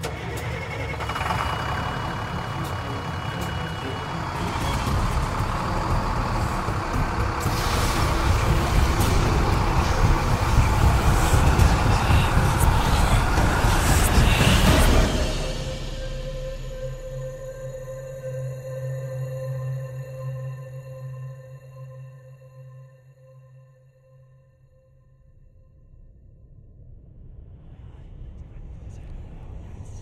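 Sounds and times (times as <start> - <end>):
bus engine roaring while straining under acceleration: 0.0 - 18.8.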